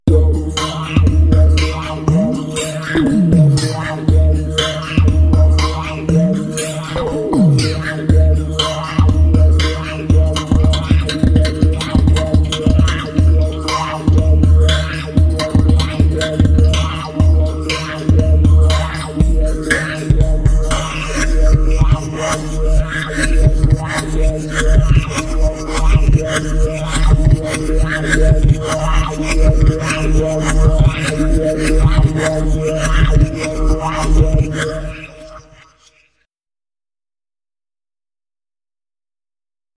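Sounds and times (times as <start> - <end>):
groovy synth music: 0.0 - 35.3.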